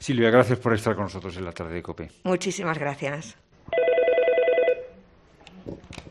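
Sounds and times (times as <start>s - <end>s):
speech: 0.0s - 3.8s
telephone ringing at a suicide prevention helpline: 3.7s - 5.0s.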